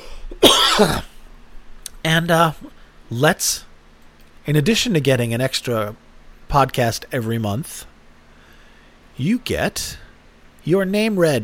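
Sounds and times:
loud cough: 0.3s - 1.2s
speech: 0.8s - 1.1s, 2.0s - 3.7s, 4.5s - 7.9s, 9.2s - 10.0s, 10.6s - 11.4s.

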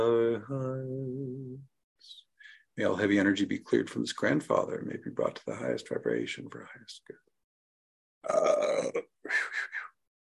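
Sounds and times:
speech: 0.0s - 0.9s, 2.8s - 7.2s, 8.2s - 9.8s
belching: 8.2s - 9.1s.

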